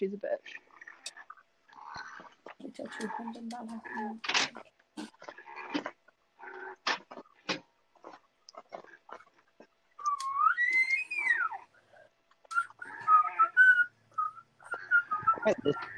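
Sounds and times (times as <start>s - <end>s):
speech: 0.0s - 1.2s, 2.8s - 4.8s, 15.4s - 15.9s
bits of voice: 2.6s - 5.1s
person whistling a wavering tune: 10.0s - 11.5s, 12.5s - 15.9s.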